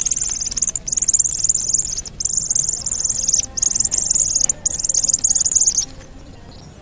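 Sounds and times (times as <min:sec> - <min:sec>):
Orange-headed thrush giving a buzzy high chattering rattle: 0:00.0 - 0:06.7.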